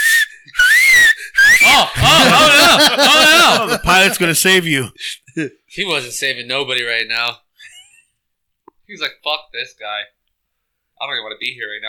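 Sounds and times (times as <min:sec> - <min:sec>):
whistle blown in loud shrill blasts: 0:00.0 - 0:02.0
laughter: 0:01.6 - 0:04.9
speech: 0:01.8 - 0:07.4, 0:08.9 - 0:10.2, 0:11.0 - 0:11.8.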